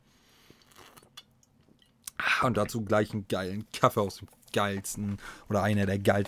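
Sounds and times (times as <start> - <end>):
sipping and slurping beer: 0.5 - 2.8
speech: 2.4 - 6.2.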